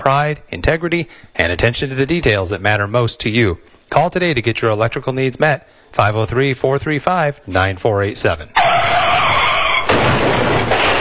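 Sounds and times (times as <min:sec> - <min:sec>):
speech: 0:00.0 - 0:08.7
car tires screeching in a skid: 0:08.6 - 0:09.9
car accident crash with heavy impact: 0:08.6 - 0:10.9
rumbling debris from car crash: 0:09.0 - 0:10.9.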